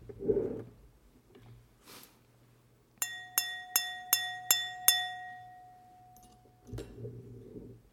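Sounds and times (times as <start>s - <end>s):
fork tapping a glass: 3.0s - 6.9s.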